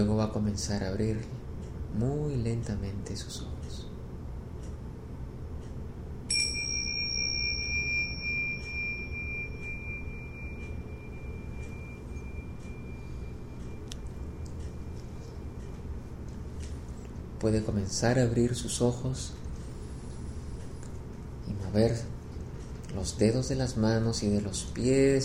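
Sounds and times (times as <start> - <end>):
speech: 0.0 - 3.9, 17.4 - 19.4, 21.6 - 22.2, 22.9 - 25.2
low steady hum: 0.0 - 25.2
single meditation bell struck: 6.3 - 15.6.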